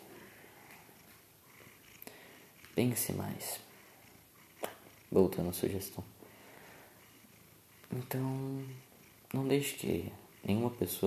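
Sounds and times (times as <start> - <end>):
sleepy kitten purring softly: 0.2 - 11.0
speech: 2.8 - 3.7, 5.1 - 6.2, 7.9 - 11.0.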